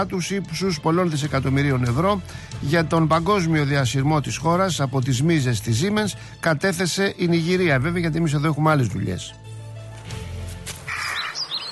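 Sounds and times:
speech: 0.0s - 9.4s
rare lesser kestrel shrill chattering calls: 10.9s - 11.7s.

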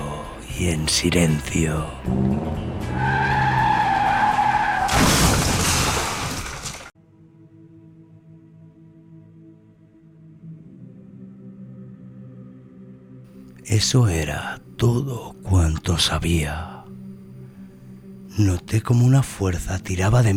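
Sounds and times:
speech: 0.6s - 3.1s, 13.8s - 16.8s, 18.4s - 20.3s
thin rubber tires screeching on wet cobblestones: 2.1s - 6.9s
crash of a vehicle failing to stop: 4.9s - 6.9s.

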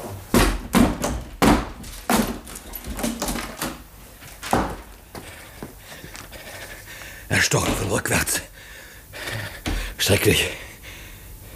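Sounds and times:
heavy thuds of a door being broken in: 0.3s - 4.9s
speech: 7.4s - 8.5s, 10.1s - 10.6s.

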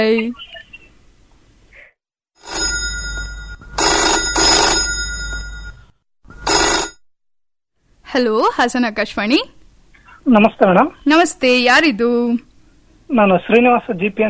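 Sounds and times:
speech: 0.0s - 0.6s, 8.2s - 9.6s, 10.2s - 12.5s, 13.1s - 14.2s
metallic telephone bell ringing for an incoming call on a phone-in line: 2.4s - 7.0s.

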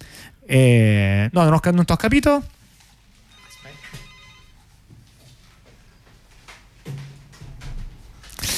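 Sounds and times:
speech: 0.5s - 2.6s
telephone ringing with incoming call, soft electronic tonal ringtone: 3.3s - 4.7s.

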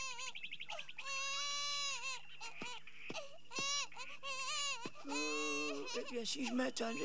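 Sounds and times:
baby crying in an animated film soundtrack: 0.0s - 7.0s
speech: 6.0s - 7.0s.

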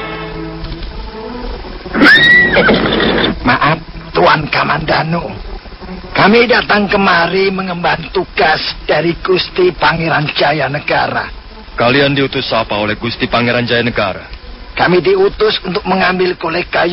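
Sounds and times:
horses neighing as they are ridden: 0.1s - 4.3s
speech: 6.3s - 16.9s.

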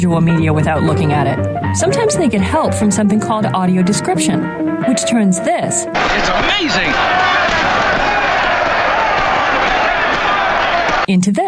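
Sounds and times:
speech: 0.0s - 8.1s, 11.1s - 11.4s
loud roaring arena crowd: 6.0s - 11.1s.

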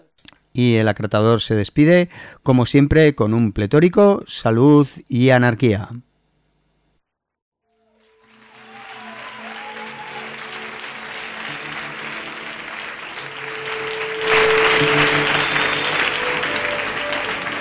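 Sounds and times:
speech: 0.6s - 6.1s
audience applause: 7.8s - 17.6s.

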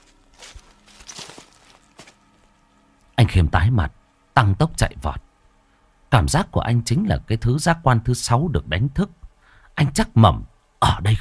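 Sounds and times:
soft footsteps of someone walking behind: 0.0s - 2.7s
speech: 3.4s - 5.2s, 6.1s - 9.2s, 9.8s - 11.1s.

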